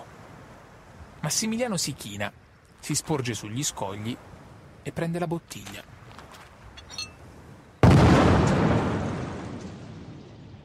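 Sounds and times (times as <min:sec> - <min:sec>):
speech: 0:01.2 - 0:06.0
loud explosion of an explosive device: 0:07.8 - 0:10.6.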